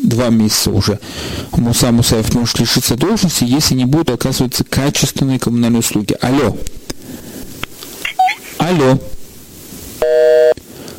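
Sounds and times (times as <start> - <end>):
speech: 0.2 - 6.9, 8.7 - 9.2
electronic telephone busy tone as a phone call drops: 10.0 - 10.6.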